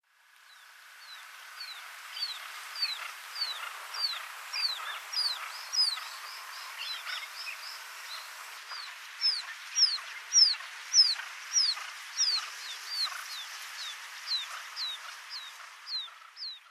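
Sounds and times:
Barred Buttonquail calling in Itoman: 0:01.6 - 0:16.7.

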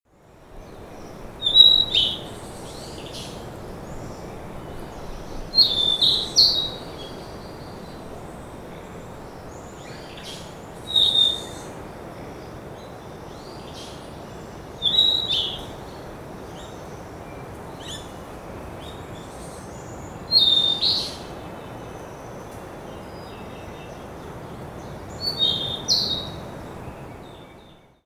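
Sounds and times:
Ryukyu flycatcher calling on Nakanoshima: 0:00.8 - 0:11.8, 0:13.2 - 0:17.0, 0:19.2 - 0:22.4, 0:25.1 - 0:26.5.

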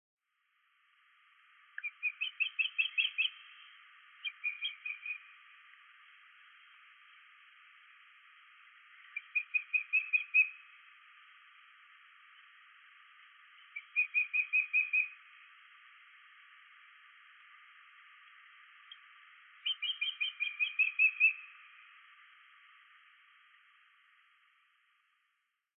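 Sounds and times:
osprey calling in Himeji: 0:01.7 - 0:05.9, 0:08.9 - 0:11.5, 0:13.4 - 0:15.6, 0:18.8 - 0:22.0.

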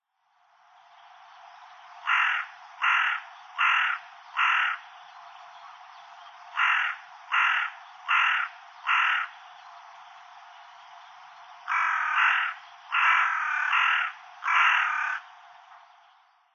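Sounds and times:
carrion crow calling: 0:02.0 - 0:05.0, 0:06.5 - 0:09.5, 0:11.7 - 0:15.4.

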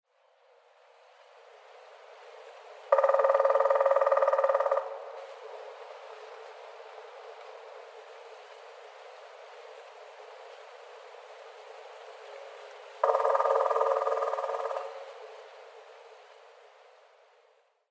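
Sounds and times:
Grey-headed Woodpecker in Muroran: 0:03.0 - 0:05.1, 0:13.0 - 0:15.2.

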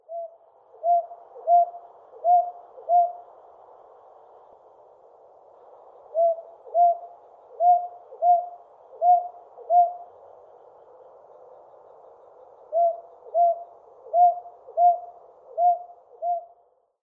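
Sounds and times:
brown boobook owl calling: 0:00.0 - 0:03.3, 0:06.1 - 0:10.1, 0:12.7 - 0:16.6.

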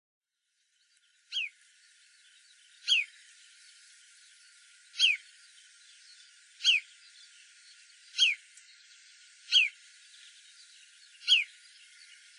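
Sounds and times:
faint background hiss: 0:00.4 - 0:12.3
marsh sandpiper giving downward-sliding whistled calls in Saga, Japan: 0:02.8 - 0:03.1, 0:05.0 - 0:05.2, 0:06.6 - 0:06.8, 0:08.2 - 0:08.4, 0:09.5 - 0:09.8, 0:11.2 - 0:11.5.

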